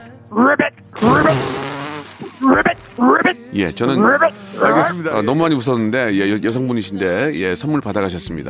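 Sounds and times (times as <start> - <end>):
speech: 0.3 - 1.5, 3.6 - 8.4
person imitating spawning-season frogs croaking: 0.3 - 4.9.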